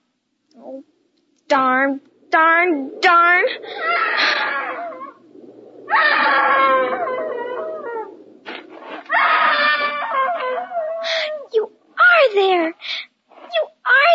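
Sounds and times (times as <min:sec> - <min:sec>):
low hum: 0:00.0 - 0:14.1
speech: 0:00.6 - 0:04.4
woman screaming with high wavering wail: 0:03.7 - 0:05.1, 0:05.9 - 0:07.5, 0:09.1 - 0:11.2.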